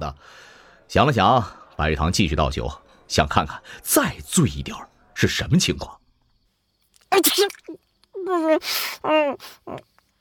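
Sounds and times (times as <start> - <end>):
speech: 0.0 - 6.0, 7.1 - 7.6, 8.3 - 9.9
voice-acted sneeze: 7.1 - 7.7.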